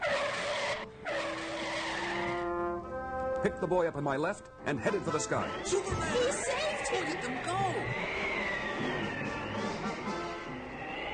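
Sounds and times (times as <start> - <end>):
truck tires skidding to a stop on a street: 0.0 - 2.8, 4.6 - 11.1
speech: 3.4 - 8.2.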